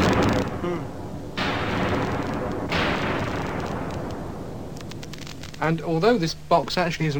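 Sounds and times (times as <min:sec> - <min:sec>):
explosion blasts with fireworks-like crackle: 0:00.0 - 0:05.7
speech: 0:05.6 - 0:07.1.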